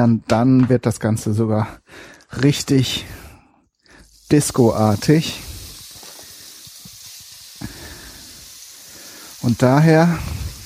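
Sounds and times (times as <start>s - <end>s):
speech: 0.0s - 3.2s, 4.3s - 5.5s, 9.4s - 10.4s
minced meat frying in a pan: 4.0s - 10.6s.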